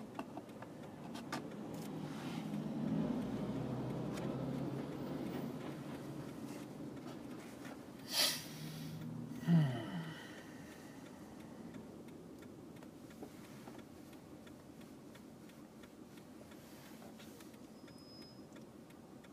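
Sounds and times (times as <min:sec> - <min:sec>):
car driving heard from inside the cabin: 0:00.0 - 0:19.3
short breathy burst: 0:08.0 - 0:09.0.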